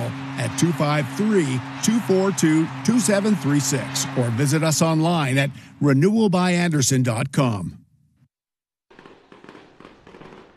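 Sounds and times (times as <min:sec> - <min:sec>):
speech: 0:00.4 - 0:07.8
fireworks exploding at a ballpark after a baseball game: 0:08.9 - 0:10.5.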